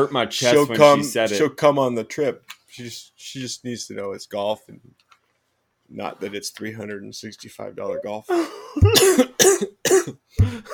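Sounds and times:
speech: 0:00.0 - 0:05.1, 0:05.9 - 0:10.7
person coughing: 0:08.3 - 0:10.7.

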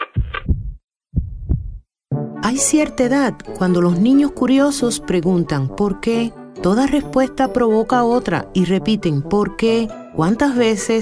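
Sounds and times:
deep booming heartbeats: 0:00.0 - 0:01.9
speech: 0:02.5 - 0:10.9.

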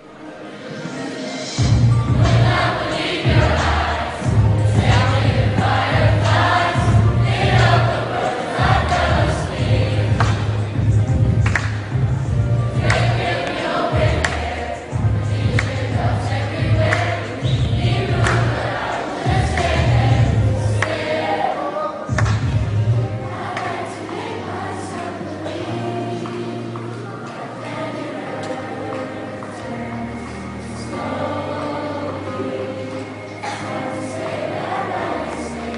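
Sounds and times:
lively crowd chatter: 0:00.0 - 0:35.7
loud live music with steady pulsing bass line: 0:01.4 - 0:08.0, 0:08.6 - 0:20.8.

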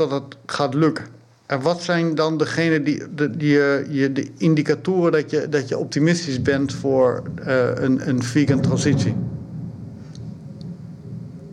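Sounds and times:
speech: 0:00.0 - 0:09.4
low heavy rumble of thunder: 0:06.1 - 0:11.5.

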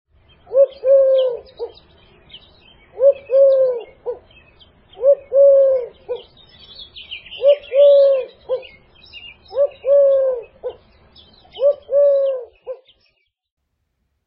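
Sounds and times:
Eurasian Collared-Dove cooing in three-note phrases: 0:00.4 - 0:01.8, 0:02.9 - 0:06.4, 0:07.3 - 0:08.8, 0:09.5 - 0:10.9, 0:11.5 - 0:13.0.

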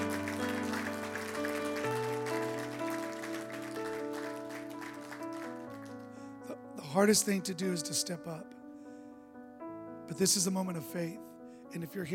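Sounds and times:
large crowd clapping: 0:00.0 - 0:06.2
sustained keyboard chords: 0:00.0 - 0:12.1
speech: 0:06.9 - 0:08.6, 0:10.1 - 0:12.1.

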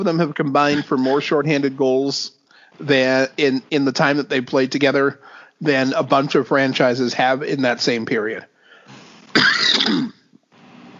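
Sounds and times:
speech: 0:00.0 - 0:09.0
person coughing: 0:00.7 - 0:01.2, 0:09.3 - 0:10.3.

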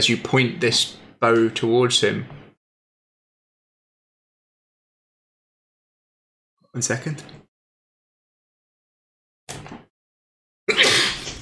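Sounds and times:
speech: 0:00.0 - 0:02.4, 0:06.8 - 0:07.4
person sneezing during a tabletop role-playing game session: 0:10.7 - 0:11.4.

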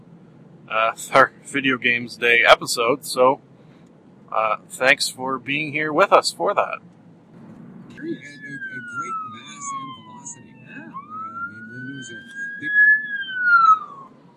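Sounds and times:
low rumble of road traffic: 0:00.0 - 0:14.3
speech: 0:00.7 - 0:03.5, 0:04.3 - 0:07.0, 0:08.0 - 0:08.5
ambulance siren wailing: 0:07.9 - 0:14.3.

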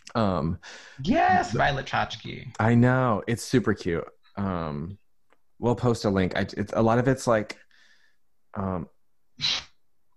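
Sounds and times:
speech: 0:00.2 - 0:05.0, 0:05.6 - 0:07.6, 0:08.5 - 0:09.7
sneeze: 0:09.4 - 0:09.8.

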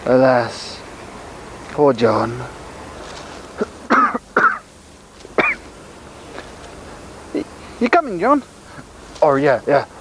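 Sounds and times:
speech: 0:00.0 - 0:00.8, 0:01.8 - 0:02.6, 0:07.8 - 0:08.6, 0:09.2 - 0:09.9
person clearing throat: 0:03.6 - 0:04.6, 0:05.4 - 0:05.6
short dry coughs: 0:03.6 - 0:04.6, 0:05.4 - 0:05.6.

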